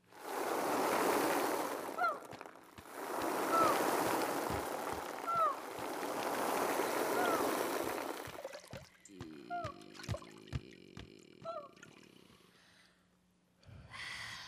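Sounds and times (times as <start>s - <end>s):
sea waves washing: 0.0s - 9.1s.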